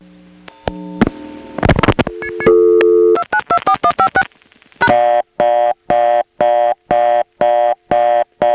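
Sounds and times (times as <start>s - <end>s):
telephone line tone: 2.0s - 4.2s, 4.8s - 8.5s
touchtone digits dialed into a touchtone converter: 2.2s - 4.2s, 4.8s - 8.5s.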